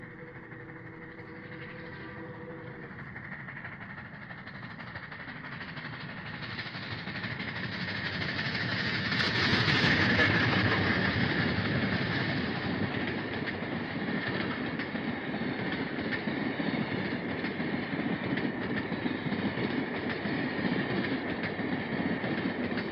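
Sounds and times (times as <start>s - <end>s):
train whistle: 0.0s - 3.5s
steam hissing: 0.0s - 22.8s
train on steel rails: 0.0s - 22.8s.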